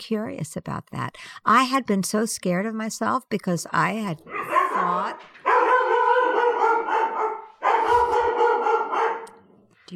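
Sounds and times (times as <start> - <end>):
speech: 0.0 - 5.4
dog howling and yelping: 4.3 - 9.3.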